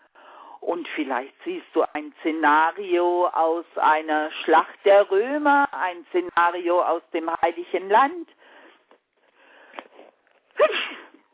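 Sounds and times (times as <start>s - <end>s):
speech: 0.6s - 8.4s
woman sneezing: 10.5s - 11.3s.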